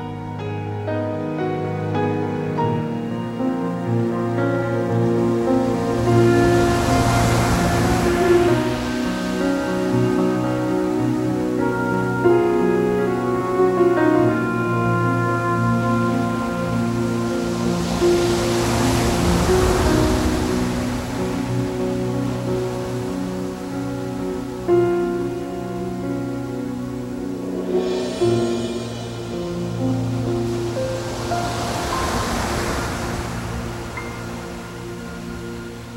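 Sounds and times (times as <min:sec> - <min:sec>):
giant ocean waves crashing into a deep sea: 0:00.0 - 0:35.9
sustained musical drone: 0:00.0 - 0:35.9.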